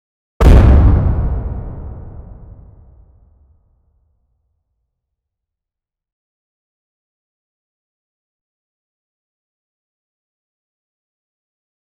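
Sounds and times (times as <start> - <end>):
strong punch landing on a surface in combat: 0.4 - 3.2.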